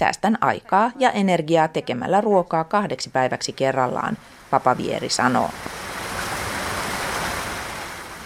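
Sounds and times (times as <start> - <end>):
speech: 0.0 - 5.8
street fountain gushing water: 3.8 - 8.2.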